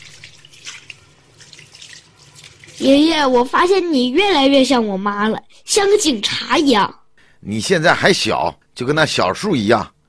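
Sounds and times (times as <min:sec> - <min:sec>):
water splashing from hand washing: 0:00.0 - 0:03.5
tap water running while washing hands: 0:00.0 - 0:04.3
speech: 0:02.8 - 0:10.0.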